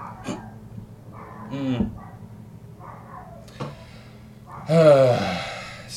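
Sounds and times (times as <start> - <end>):
female dog barking: 0.0 - 3.8, 4.4 - 4.7
low steady hum: 0.0 - 5.9.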